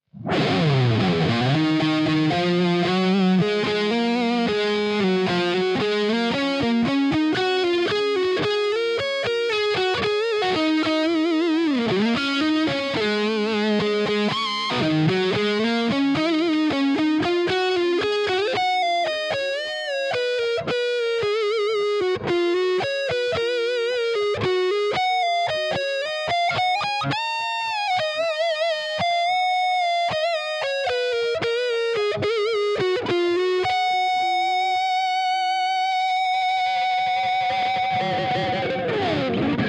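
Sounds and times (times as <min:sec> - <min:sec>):
distorted electric guitars on neck: 0:00.1 - 0:39.6.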